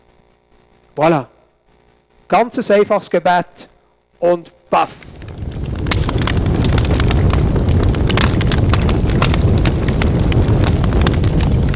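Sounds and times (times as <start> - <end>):
speech: 1.0 - 1.3, 2.3 - 5.1
loud fire roaring with crackles and pops: 4.9 - 11.7.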